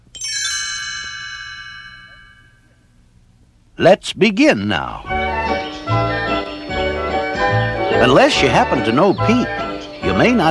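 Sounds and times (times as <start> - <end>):
bright shimmering page-turn chime in a read-along storybook: 0.1 - 2.7
faint low hum: 1.6 - 7.0
speech: 3.8 - 5.2, 8.0 - 10.4.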